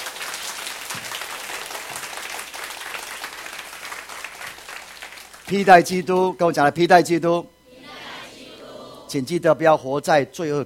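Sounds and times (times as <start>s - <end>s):
church congregation clapping during a service: 0.0s - 6.5s
speech: 5.5s - 7.5s, 9.1s - 10.6s.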